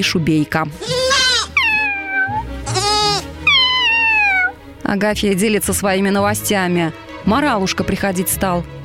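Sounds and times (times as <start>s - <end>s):
speech: 0.0s - 1.0s, 4.9s - 8.8s
newborn goat kid bleating high-pitched: 0.8s - 4.5s.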